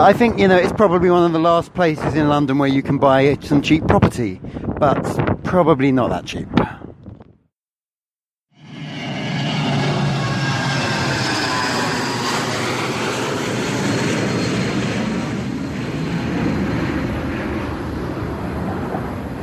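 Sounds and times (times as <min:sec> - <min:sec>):
speech: 0:00.0 - 0:06.8
airplane passing overhead: 0:08.6 - 0:19.4.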